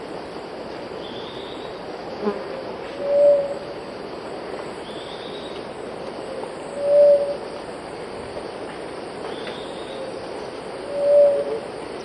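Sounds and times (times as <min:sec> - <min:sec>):
steady background noise: 0:00.0 - 0:12.0
gray-fronted dove cooing in the eastern lowlands of South America: 0:02.5 - 0:03.6, 0:06.3 - 0:07.4, 0:09.7 - 0:11.7.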